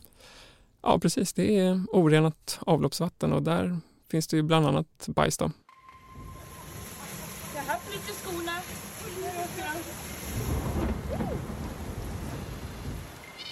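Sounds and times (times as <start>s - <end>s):
speech: 0.8s - 5.6s
heavy late-May rain pouring in Stockholm: 6.0s - 13.5s
low thunder rumbling: 6.1s - 13.3s.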